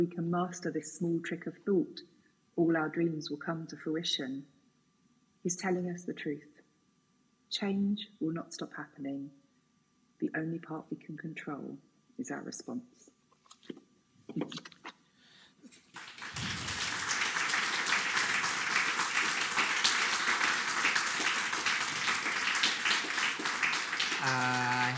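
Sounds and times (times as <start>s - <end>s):
speech: 0.0s - 4.6s, 5.4s - 6.5s, 7.5s - 9.4s, 10.2s - 13.1s, 13.7s - 14.8s, 24.2s - 24.9s
large audience applause: 15.7s - 24.9s.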